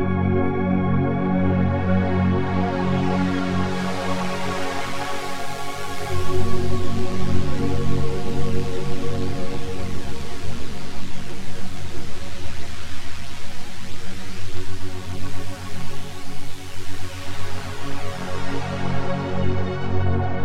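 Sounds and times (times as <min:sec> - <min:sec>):
hybrid pad on Yamaha SY77 synthesizer: 0:00.2 - 0:20.4.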